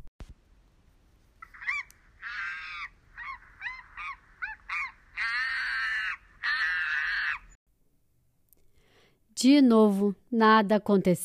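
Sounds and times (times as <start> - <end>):
monkey at the top of a tall tree screeching: 1.4 - 7.6
speech: 9.4 - 11.2.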